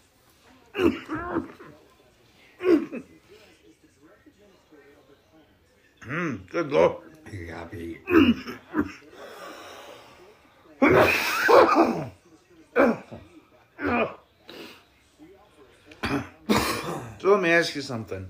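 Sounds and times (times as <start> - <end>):
person coughing harshly: 0.8 - 1.6, 2.6 - 3.1, 8.1 - 9.0, 10.8 - 12.2, 16.0 - 17.2
speech: 6.1 - 9.0, 10.8 - 12.1, 17.4 - 18.2.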